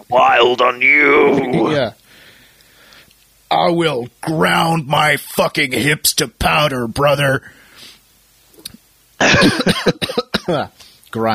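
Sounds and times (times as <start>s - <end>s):
speech: 0.1s - 2.0s, 3.5s - 7.6s, 9.2s - 11.3s
person in a harsh coughing fit: 9.2s - 10.7s.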